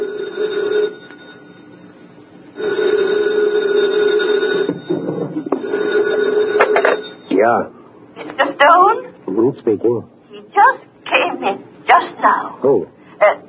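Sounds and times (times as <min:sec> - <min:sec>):
old-fashioned telephone bell ringing: 0:00.0 - 0:07.4
speech: 0:08.6 - 0:10.8, 0:12.2 - 0:13.4.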